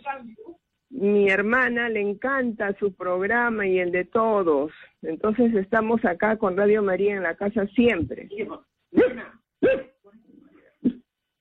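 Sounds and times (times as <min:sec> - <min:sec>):
speech: 0:01.0 - 0:09.9
small dog barking at a caller's home: 0:09.0 - 0:09.9.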